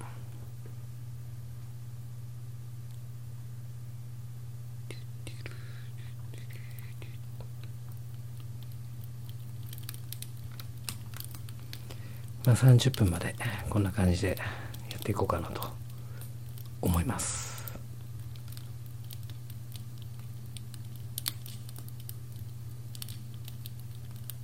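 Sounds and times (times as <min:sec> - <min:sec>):
low hum: 0:00.0 - 0:24.4
soft constant hiss: 0:00.0 - 0:24.4
campfire crackling with snaps and pops: 0:05.1 - 0:24.4
speech: 0:12.5 - 0:15.8, 0:16.9 - 0:17.5.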